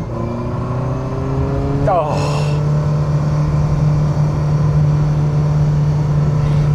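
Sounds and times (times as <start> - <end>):
small-displacement sports car engine revving with thrashy high-pitched whine: 0.0 - 6.7
person exclaiming: 1.9 - 2.6.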